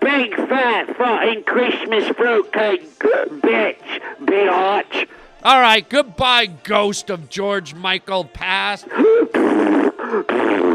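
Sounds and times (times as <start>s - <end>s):
speech: 0.2s - 10.7s
loud buzzy fart: 9.3s - 10.7s.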